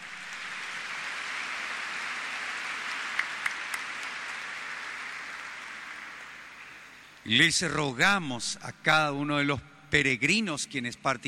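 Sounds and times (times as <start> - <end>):
audience at Mass applauding in a basilica sanctuary: 0.0 - 7.1
speech: 7.2 - 11.2.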